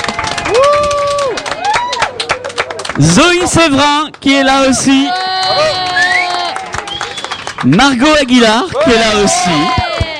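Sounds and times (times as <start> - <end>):
loud whoops and cheers: 0.0 - 2.5, 4.8 - 7.6, 8.7 - 10.1
crowd applauding a guest: 0.0 - 10.1
speech: 3.0 - 5.8, 7.6 - 9.8.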